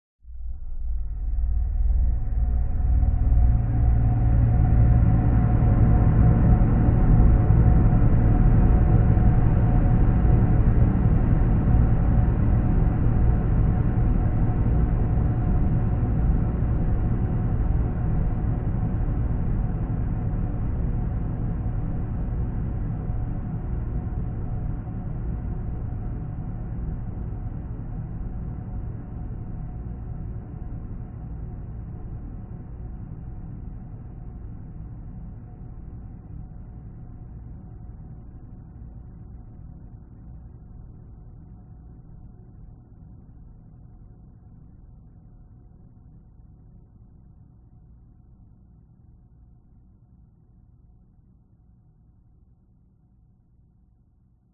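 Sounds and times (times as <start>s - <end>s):
dark sinister fearful sound design drone with long decay: 0.4s - 41.4s.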